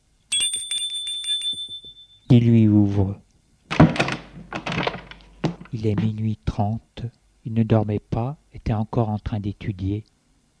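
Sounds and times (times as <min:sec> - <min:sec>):
doorbell ringing at a door: 0:00.3 - 0:02.3
speech: 0:02.3 - 0:03.2, 0:05.7 - 0:10.1.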